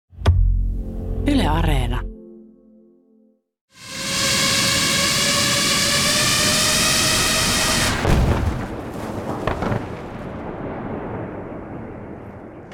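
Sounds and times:
speech: 0:01.2 - 0:02.1
drone buzzing in flight: 0:03.7 - 0:08.1
explosive dropped from a drone exploding: 0:07.8 - 0:12.7
rumbling and crackles after explosion: 0:08.0 - 0:12.7.

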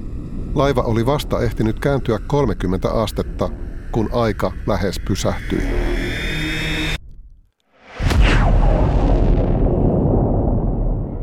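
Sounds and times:
steady droning hum: 0:00.0 - 0:07.3
speech: 0:00.5 - 0:05.9
massive explosion in the stern of a ship: 0:07.8 - 0:11.2.

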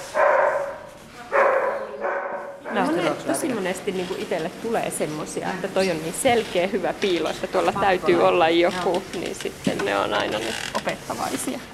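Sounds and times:
search dog barking to signal a find: 0:00.0 - 0:03.0
speech: 0:03.4 - 0:11.7.

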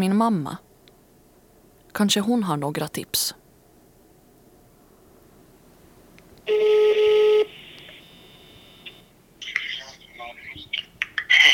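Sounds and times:
speech: 0:00.0 - 0:00.7, 0:02.0 - 0:03.4
soft sustained telephone line tone: 0:06.5 - 0:09.0
voices on the phone line: 0:06.5 - 0:11.5.

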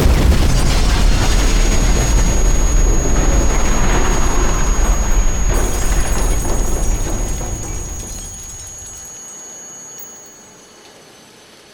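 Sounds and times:
powerful explosion in a shopping centre: 0:00.0 - 0:09.0.

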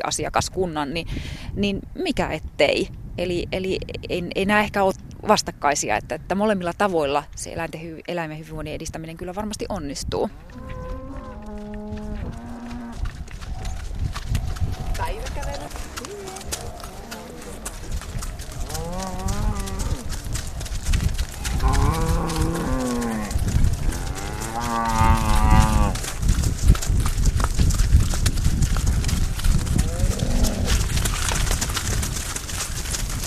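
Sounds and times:
speech: 0:00.0 - 0:10.8
hoofbeats: 0:10.3 - 0:33.2
young cows mooing as they run out to pasture: 0:10.4 - 0:13.0, 0:15.5 - 0:17.9, 0:18.6 - 0:20.2, 0:21.4 - 0:26.1, 0:29.8 - 0:30.8.

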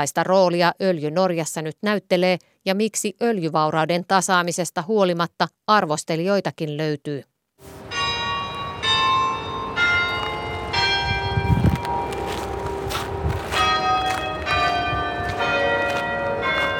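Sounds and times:
speech: 0:00.0 - 0:07.8
church bells tolling in a steady overlapping peal: 0:07.8 - 0:16.7.

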